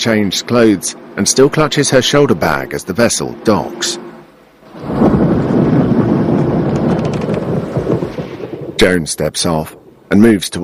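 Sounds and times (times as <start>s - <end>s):
speech: 0.0s - 4.0s, 8.9s - 10.6s
gusty wind: 1.0s - 10.6s
deep rolling thunder: 4.7s - 10.1s.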